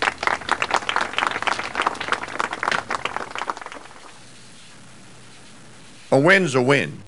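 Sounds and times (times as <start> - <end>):
applause from a small group: 0.0 - 4.3
speech: 6.1 - 7.0.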